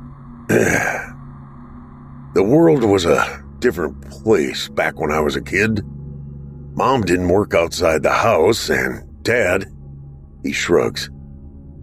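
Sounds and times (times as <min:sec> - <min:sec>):
speech: 0:00.5 - 0:01.0, 0:02.5 - 0:06.0, 0:06.8 - 0:09.7, 0:10.4 - 0:11.2
man clearing his throat: 0:00.5 - 0:01.1.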